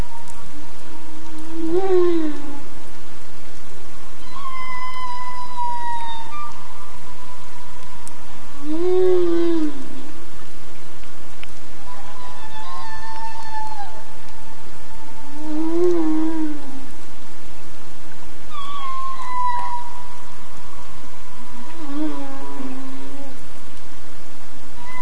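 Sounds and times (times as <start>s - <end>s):
humpback whale in Glacier Bay: 1.3s - 2.7s, 4.2s - 10.1s, 11.8s - 16.9s, 18.5s - 23.5s.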